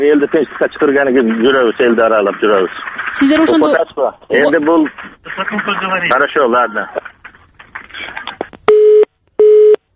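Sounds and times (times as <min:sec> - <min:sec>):
speech: 0:00.0 - 0:07.2
telephone line tone beeps after a dropped connection: 0:08.7 - 0:09.8.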